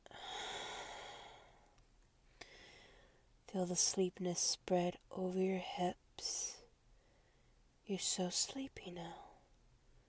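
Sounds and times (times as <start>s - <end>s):
person breathing slowly: 0.1s - 3.3s, 7.0s - 7.6s
speech: 3.5s - 6.6s, 7.9s - 9.3s.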